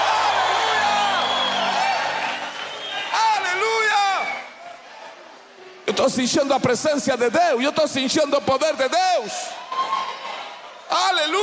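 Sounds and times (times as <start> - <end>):
high whoops from the audience: 0.0 - 4.6
large audience shouting together: 0.0 - 6.5, 8.6 - 11.4
speech: 5.9 - 9.8, 11.2 - 11.4.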